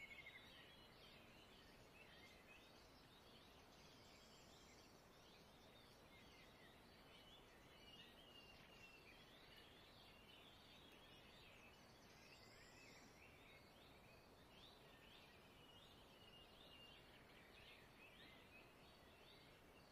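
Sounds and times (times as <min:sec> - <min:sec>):
birds singing with chirps and short trills: 0:00.0 - 0:19.9
low rumbling hiss: 0:00.0 - 0:19.9.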